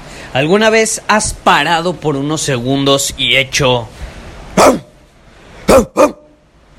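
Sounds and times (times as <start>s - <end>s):
speech: 0.3s - 4.0s
man imitating a dog barking: 4.5s - 5.0s, 5.6s - 6.4s.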